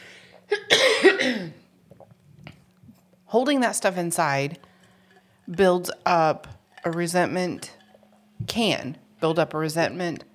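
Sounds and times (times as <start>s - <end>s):
person coughing with a lingering post-COVID cough: 0.5s - 1.7s
speech: 3.3s - 4.7s, 5.5s - 7.8s, 8.4s - 10.3s.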